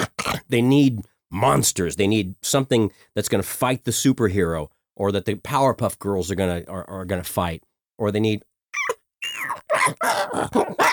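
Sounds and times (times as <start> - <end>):
speech: 0.5 - 10.9
human voice imitating a dog barking and growling: 8.8 - 10.9.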